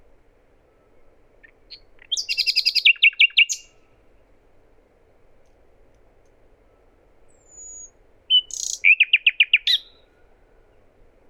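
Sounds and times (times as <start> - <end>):
common nightingale Luscinia megarhynchos singing: 1.4 - 3.8, 7.3 - 10.1.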